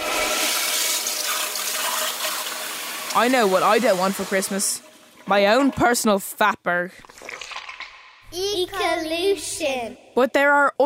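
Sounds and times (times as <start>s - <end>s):
toilet flushing: 0.0s - 6.4s
speech: 3.1s - 7.2s, 8.3s - 10.8s.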